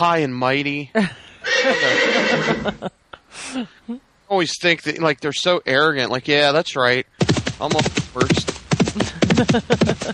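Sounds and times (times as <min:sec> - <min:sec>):
speech: 0:00.0 - 0:10.1
laughter: 0:01.0 - 0:02.9, 0:09.0 - 0:10.1
horse whinnying: 0:01.4 - 0:02.8.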